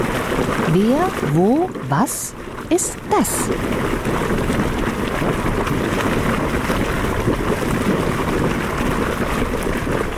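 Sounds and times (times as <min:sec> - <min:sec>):
boiling water bubbling in a hot spring in Iceland: 0:00.0 - 0:10.1
speech: 0:00.7 - 0:04.6.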